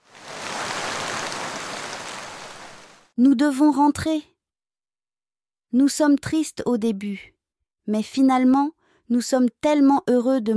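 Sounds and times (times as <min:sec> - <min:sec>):
heavy rain falling: 0:00.0 - 0:03.1
speech: 0:03.2 - 0:04.3, 0:05.7 - 0:10.5.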